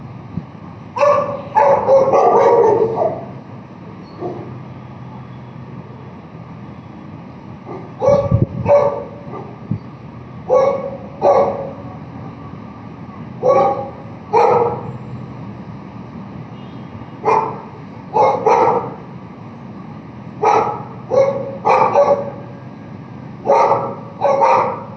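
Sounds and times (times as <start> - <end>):
dog barking: 1.0 - 3.4, 4.2 - 4.6, 7.6 - 9.6, 10.5 - 11.9, 13.4 - 14.9, 17.2 - 19.0, 20.4 - 22.4, 23.4 - 24.9.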